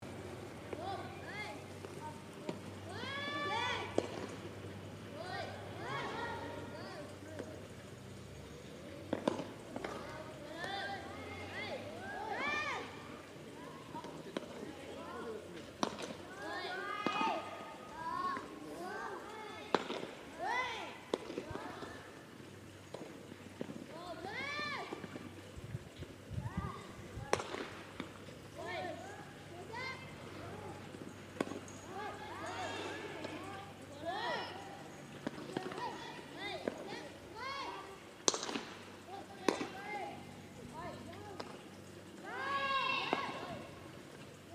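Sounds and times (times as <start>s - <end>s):
children playing baseball in Hiwasa: 0.0s - 44.5s.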